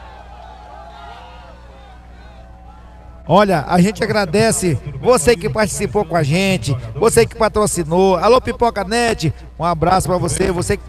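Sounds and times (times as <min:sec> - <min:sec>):
large crowd of football fans cheering and shouting at a trophy celebration: 0:00.0 - 0:03.3
speech: 0:03.3 - 0:10.8.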